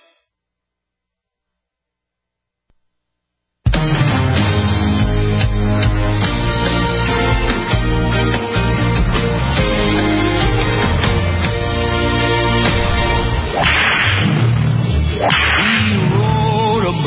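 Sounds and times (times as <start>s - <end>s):
busy music bed: 3.7s - 17.0s
whip cracking: 13.5s - 14.6s, 15.2s - 16.0s.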